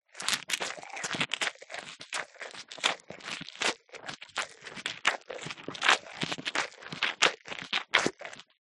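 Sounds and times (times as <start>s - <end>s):
cow eating grass or foliage: 0.6s - 8.3s.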